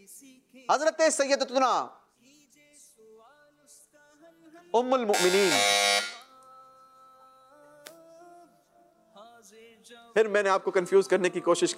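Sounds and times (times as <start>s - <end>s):
speech: 0.4s - 2.0s, 4.6s - 6.1s, 10.2s - 11.7s
loud electronic quiz buzzer pressed by a contestant: 5.1s - 6.3s.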